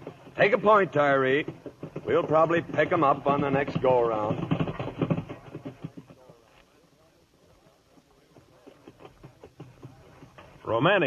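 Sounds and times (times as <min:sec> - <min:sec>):
hooves of several prancing cavalry horses clip-clopping: 0:00.0 - 0:11.0
outdoor noise: 0:00.0 - 0:11.0
speech: 0:00.4 - 0:04.5, 0:10.7 - 0:11.0.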